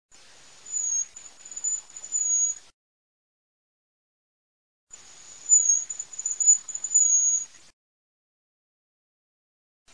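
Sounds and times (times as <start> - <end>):
mountain francolin calling: 0.7 - 2.6, 5.4 - 7.6.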